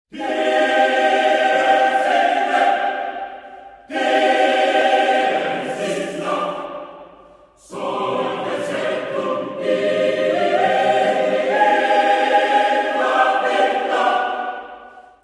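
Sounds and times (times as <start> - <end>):
horror choir music: 0.1 - 15.2.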